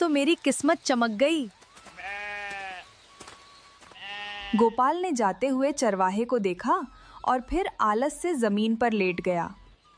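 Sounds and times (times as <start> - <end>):
speech: 0.0 - 1.6, 4.5 - 9.6
sheep bleating as a shepherd leads his flock: 1.9 - 2.9, 3.9 - 5.0.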